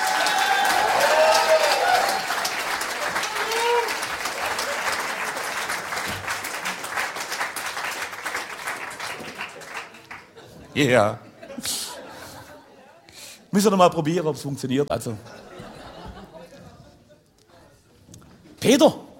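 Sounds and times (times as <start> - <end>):
cheering voices: 0.0 - 5.5
crowd applauding: 0.0 - 10.4
laughter: 9.9 - 13.0, 15.2 - 17.3
speech: 10.8 - 11.8, 13.5 - 15.4, 18.7 - 19.0.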